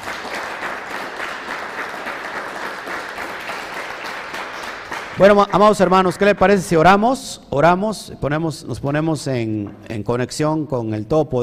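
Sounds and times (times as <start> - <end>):
crowd applauding: 0.0 - 6.7
speech: 5.2 - 11.4.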